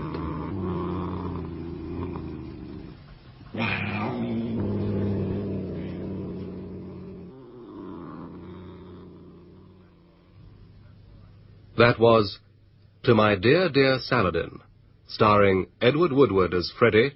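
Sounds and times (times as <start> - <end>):
sleek fat cat purring: 0.0 - 11.0
speech: 11.8 - 12.4, 13.0 - 17.1.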